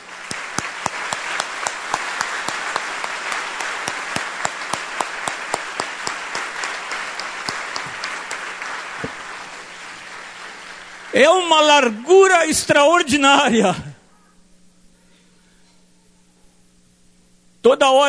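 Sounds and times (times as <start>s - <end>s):
audience applauding: 0.0s - 12.0s
speech: 11.1s - 13.9s, 17.6s - 18.0s.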